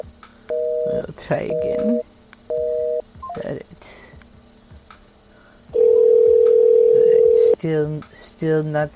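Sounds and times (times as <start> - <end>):
outgoing phone call ringing tone, steady electronic hum: 0.5 - 3.4, 5.8 - 7.6
speech: 1.0 - 2.1, 7.6 - 8.9.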